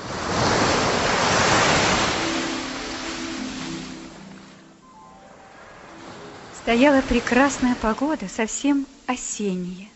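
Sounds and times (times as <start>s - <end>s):
wind blowing: 0.0s - 9.0s
sea waves washing in: 0.0s - 9.4s
speech: 6.6s - 9.9s.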